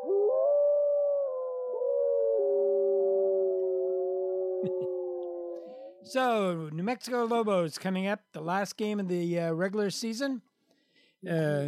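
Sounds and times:
young wolves howling together: 0.0s - 6.1s
speech: 6.0s - 10.5s, 11.2s - 11.6s.

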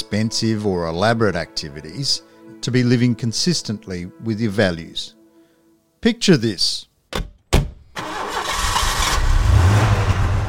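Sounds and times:
speech: 0.1s - 5.2s, 6.0s - 6.9s
car engine starting: 8.0s - 10.4s.

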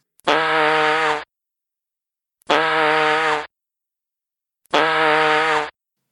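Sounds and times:
comedic scream blended with a fart sound: 0.2s - 1.3s, 2.5s - 3.5s, 4.7s - 5.8s.

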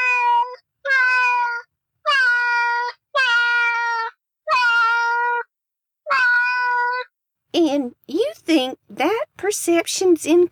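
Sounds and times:
cat meowing: 0.0s - 5.5s, 6.1s - 7.1s
speech: 8.5s - 10.5s.

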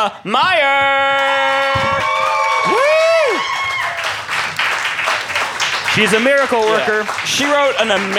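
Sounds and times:
speech: 0.0s - 1.6s, 6.0s - 8.1s
crowd cheering with loud whoops: 1.4s - 4.4s
crowd applause: 1.4s - 8.1s.

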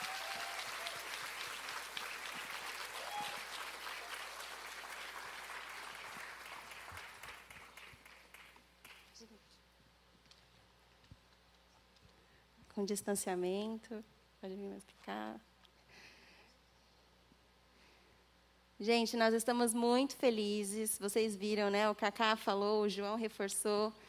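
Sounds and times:
audience applauding: 0.0s - 9.2s
speech: 12.8s - 15.5s, 18.8s - 24.0s.

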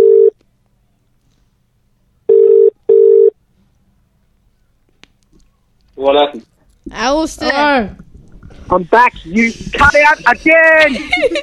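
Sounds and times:
electronic call tones while dialing into a conference line: 2.3s - 3.3s
speech: 6.0s - 8.1s, 8.7s - 11.4s
laughter: 9.3s - 11.4s.

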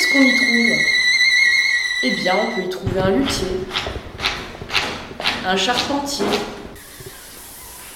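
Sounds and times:
speech: 0.1s - 1.0s, 2.0s - 4.0s, 5.4s - 6.6s
faint low thumps: 2.8s - 5.3s
pressure washer spraying pressurized water: 6.8s - 7.9s.

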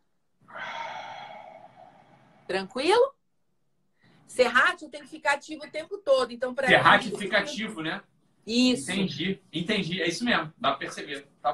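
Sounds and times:
breathy exhale during a guided breathing exercise: 0.5s - 2.5s
speech: 2.5s - 3.2s, 4.3s - 11.5s.

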